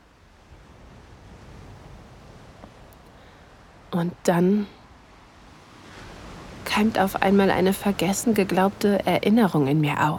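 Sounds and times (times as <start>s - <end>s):
gentle waves lapping on the shore: 0.0s - 10.1s
light breeze: 0.0s - 10.1s
speech: 4.0s - 4.8s, 6.8s - 10.1s.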